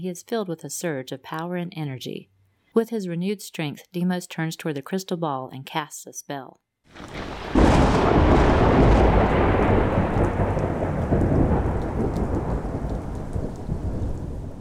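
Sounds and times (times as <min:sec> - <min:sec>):
speech: 0:00.0 - 0:07.2
loud thunderclap rumbling: 0:06.9 - 0:14.5
steady heavy rain: 0:06.9 - 0:14.5.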